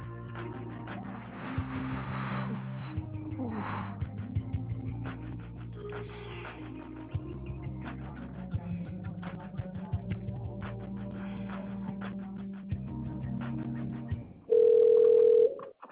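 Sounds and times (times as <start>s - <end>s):
busy music: 0.0s - 14.2s
telephone line steady electronic ringing tone: 14.5s - 15.7s.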